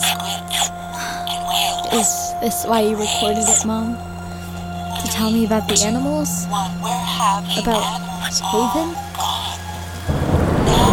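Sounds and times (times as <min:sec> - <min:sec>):
steady rain pouring: 0:00.0 - 0:10.9
speech: 0:01.9 - 0:04.1, 0:05.0 - 0:09.0
low rumble of thunder: 0:10.1 - 0:10.9.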